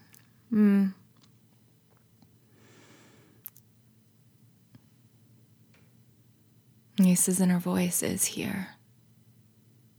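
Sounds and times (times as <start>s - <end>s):
speech: 0.5s - 1.0s, 7.0s - 8.8s
woman giving a loud drawn-out yawn with a falling groan: 0.5s - 1.0s.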